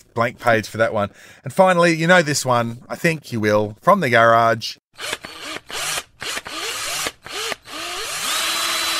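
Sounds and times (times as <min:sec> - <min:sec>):
speech: 0:00.2 - 0:05.8
electric drill driving a screw in a garage: 0:05.0 - 0:08.9.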